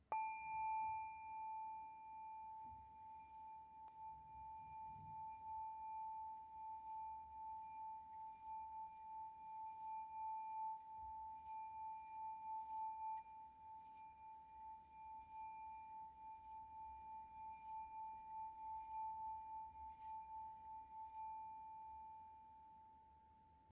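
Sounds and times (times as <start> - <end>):
decorated Tibetan singing bowl: 0.0 - 23.7.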